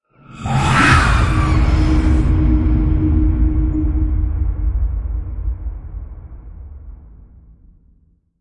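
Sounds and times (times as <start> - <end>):
spectre scream: 0.1 - 4.9.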